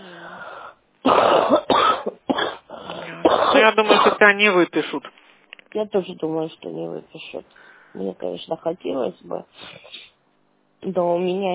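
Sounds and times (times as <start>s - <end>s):
hoarse chesty cough with rough wet bursts: 1.0s - 4.3s
speech: 3.7s - 10.0s, 10.8s - 11.5s.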